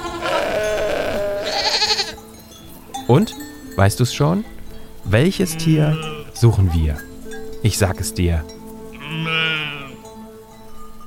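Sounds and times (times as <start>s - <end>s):
goat bleating: 0.0s - 2.2s, 5.3s - 7.0s, 8.9s - 10.0s
speech: 3.1s - 9.4s.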